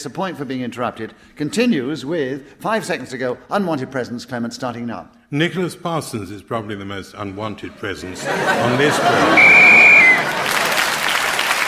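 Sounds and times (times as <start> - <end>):
speech: 0.0 - 9.9
laughter: 7.4 - 11.4
panel game audience applause: 8.4 - 11.6
short sharp whistle blast: 9.3 - 10.3.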